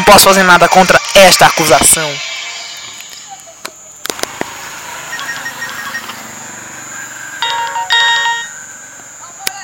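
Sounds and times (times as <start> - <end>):
speech: 0.0 - 2.3
mobile phone ringtone ringing unanswered: 5.1 - 6.4, 7.4 - 8.7.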